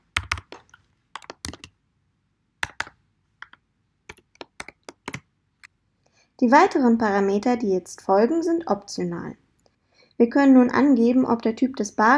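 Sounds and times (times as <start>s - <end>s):
typing on a computer keyboard: 0.0s - 1.7s, 2.6s - 5.2s
speech: 6.4s - 9.4s, 10.2s - 12.1s.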